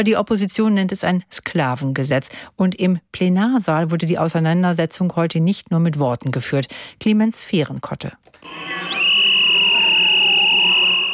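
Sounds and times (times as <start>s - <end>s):
speech: 0.0s - 8.7s
shrill whistle or siren in a parliament chamber during a protest: 8.4s - 11.1s.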